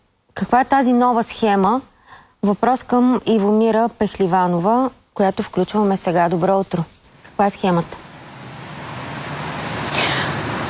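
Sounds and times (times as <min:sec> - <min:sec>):
speech: 0:00.4 - 0:08.0
city centre street traffic at a bus stop in Varna, Bulgaria: 0:06.8 - 0:10.6
brief rising hiss: 0:09.8 - 0:10.6.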